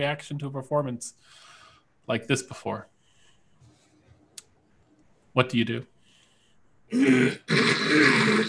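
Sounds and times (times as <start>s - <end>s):
speech: 0.0s - 1.5s, 2.1s - 2.9s, 5.4s - 5.9s, 6.9s - 8.4s
loud rough throat clearing: 6.9s - 8.4s.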